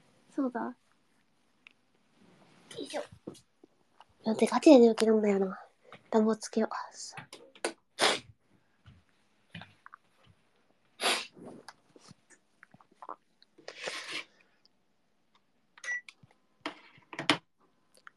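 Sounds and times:
speech: 0.4 - 0.8, 2.7 - 3.5, 4.2 - 7.4
person sneezing: 8.0 - 8.3, 11.0 - 11.6.

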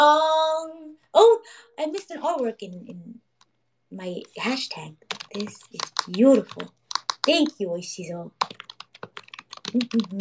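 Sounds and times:
speech: 1.8 - 3.2, 3.9 - 8.6, 9.7 - 10.1
computer keyboard typing: 5.1 - 7.6, 8.4 - 10.1.

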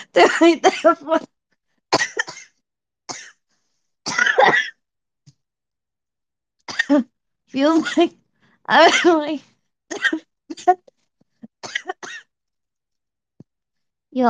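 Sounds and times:
person coughing: 0.0 - 1.0, 1.9 - 3.4, 4.1 - 4.8, 9.9 - 10.8, 11.6 - 12.3
speech: 0.2 - 2.0, 4.4 - 4.7, 6.9 - 10.9.

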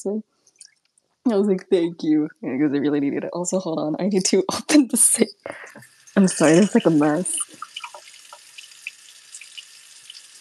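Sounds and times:
speech: 0.0 - 0.4, 1.3 - 7.5
water dripping: 0.4 - 2.8, 5.5 - 10.3
water running from a sink faucet: 5.7 - 10.3.

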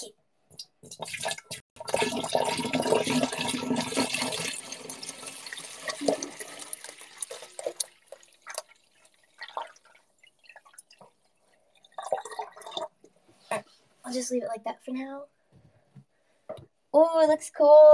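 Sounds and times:
bottled water pouring into an oddly shaped vase: 0.9 - 13.0
speech: 14.3 - 15.4, 16.9 - 17.9.

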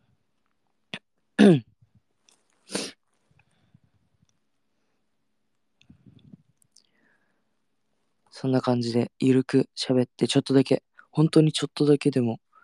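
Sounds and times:
speech: 1.4 - 1.7, 8.4 - 12.5
sniffing through a stuffy nose: 2.6 - 3.0.

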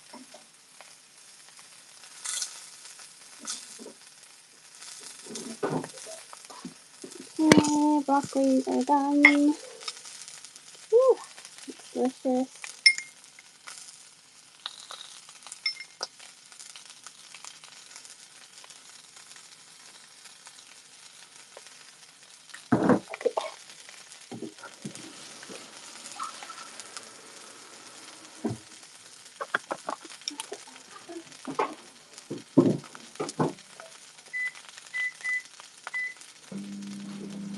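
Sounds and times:
sausages sizzling and crackling as they fry in a pan: 0.0 - 37.5
speech: 7.6 - 9.7, 12.0 - 12.6.

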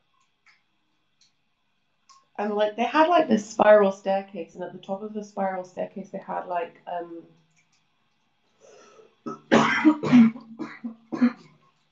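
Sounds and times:
speech: 2.4 - 7.4
person clearing throat: 9.3 - 11.5
small coughs: 9.3 - 11.5.

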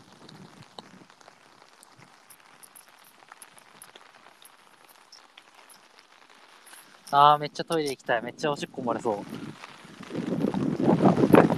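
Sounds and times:
gusty wind roaring outside: 7.0 - 11.5
speech: 7.1 - 9.7.

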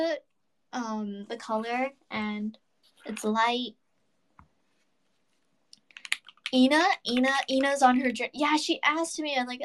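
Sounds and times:
speech: 0.0 - 3.8, 6.5 - 9.6
typing on a mechanical keyboard with lubed stabilizers: 5.9 - 7.8.

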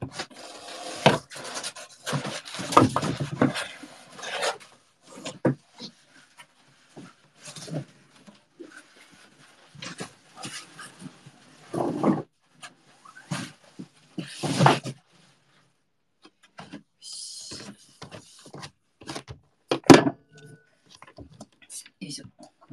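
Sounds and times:
empty cardboard box being shoved aside, scraping and rubbing: 0.0 - 6.4, 7.0 - 15.0.

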